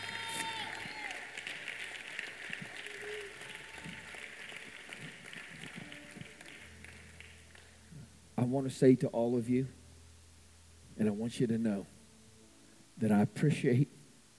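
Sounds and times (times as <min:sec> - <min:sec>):
crowd cheering: 0:00.0 - 0:07.4
audience applause: 0:00.0 - 0:07.8
speech: 0:08.5 - 0:09.8, 0:11.0 - 0:11.9, 0:13.0 - 0:14.0.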